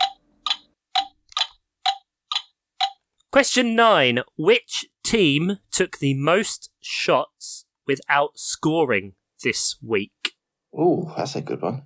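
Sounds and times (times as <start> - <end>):
clock ticking with bright metallic ticks: 0.0 - 3.8
speech: 3.3 - 11.8.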